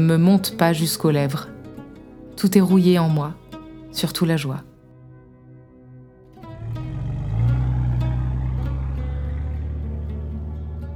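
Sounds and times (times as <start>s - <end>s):
speech: 0.0s - 1.5s, 2.4s - 4.7s
4x4 off-road vehicle engine driving along a rough track: 6.4s - 10.9s.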